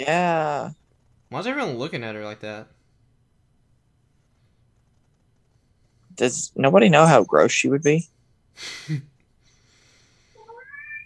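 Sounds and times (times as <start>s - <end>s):
speech: 0.0s - 2.8s, 6.2s - 9.1s
cat meowing: 10.4s - 11.0s.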